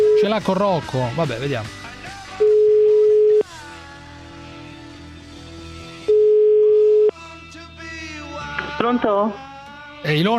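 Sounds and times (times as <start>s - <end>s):
speech: 0.2s - 1.8s, 8.8s - 10.3s
ringback tone of an outgoing telephone call: 2.4s - 3.4s, 6.1s - 7.1s.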